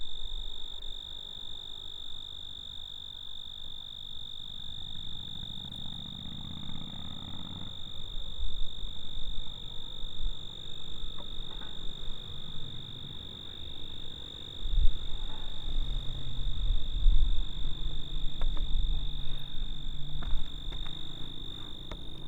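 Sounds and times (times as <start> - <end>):
cricket giving a steady high-pitched trill: 0.0 - 22.2
soft low rumbling noise: 6.0 - 22.2.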